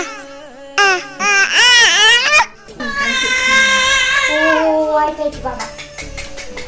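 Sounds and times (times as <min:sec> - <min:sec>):
baby crying in long high-pitched wails: 0:00.8 - 0:04.8.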